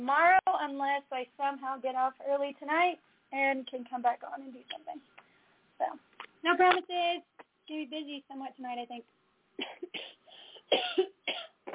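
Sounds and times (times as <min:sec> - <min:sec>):
speech: 0:00.0 - 0:05.1, 0:05.8 - 0:10.1, 0:10.7 - 0:11.7
harsh coughs: 0:09.6 - 0:11.7.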